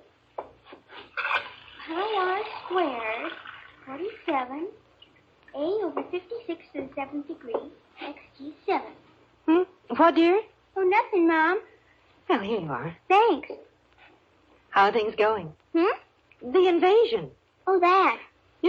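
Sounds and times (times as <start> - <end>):
water running from a tap into a glass: 1.4 - 4.4
speech: 1.9 - 4.8, 5.5 - 11.7, 12.3 - 13.7, 14.8 - 18.6.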